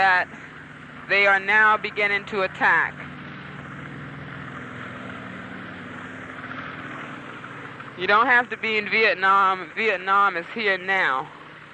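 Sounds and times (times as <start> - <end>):
speech: 0.0 - 0.4, 1.1 - 3.1, 8.0 - 11.4
army helicopter engine and rotor drone taking off and circling: 0.0 - 11.7.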